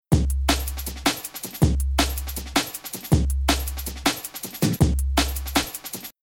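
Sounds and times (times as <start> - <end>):
drum and bass rhythm loop pattern: 0.0 - 6.2.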